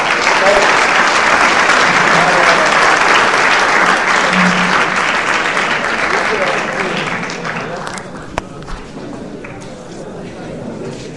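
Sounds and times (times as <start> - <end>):
large audience applauding after a blessing at a conference: 0.0 - 8.6.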